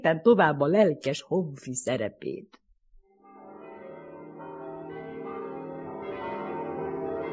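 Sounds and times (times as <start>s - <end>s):
speech: 0.0s - 2.6s
church bells ringing in a peal: 3.2s - 7.3s.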